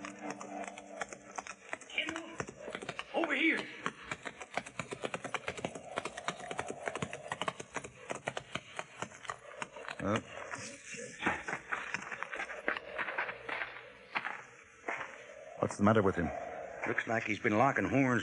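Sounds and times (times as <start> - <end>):
two horses galloping toward low hills: 0.0 - 14.3
speech: 15.8 - 18.2.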